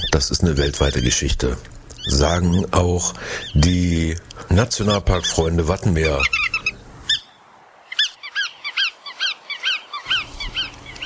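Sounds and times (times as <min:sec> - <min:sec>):
bar-tailed godwit giving nasal yelping calls: 0:00.0 - 0:11.0
speech: 0:00.1 - 0:06.5.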